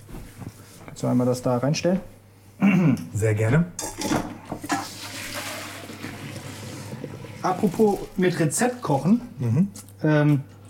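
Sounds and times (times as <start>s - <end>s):
speech: 1.0s - 4.2s, 7.4s - 10.5s
asparagus cooking water pouring and splashing from a pot: 4.7s - 9.2s.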